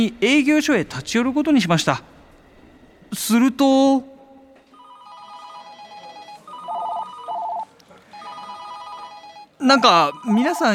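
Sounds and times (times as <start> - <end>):
speech: 0.0 - 2.2, 3.1 - 4.1, 9.6 - 10.7
several telephones ringing in a noisy office: 4.8 - 10.7.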